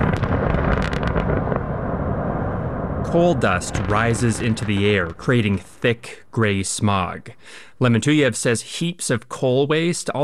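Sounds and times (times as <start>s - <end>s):
open pit mine blasting explosions beside Russian villages: 0.0s - 6.1s
speech: 3.1s - 10.2s.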